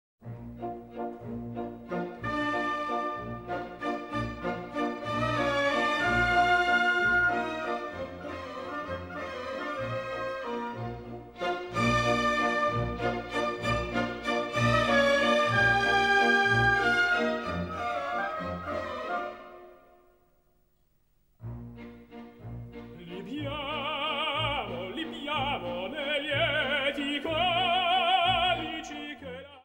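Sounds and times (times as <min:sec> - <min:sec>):
classical music: 0:00.2 - 0:20.4, 0:21.2 - 0:29.6.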